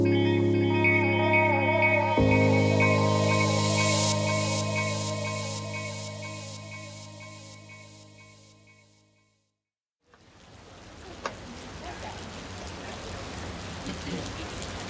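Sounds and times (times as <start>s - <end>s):
brief musical tone: 0.0s - 9.1s
steady rain pattering on a street at night: 10.0s - 14.8s.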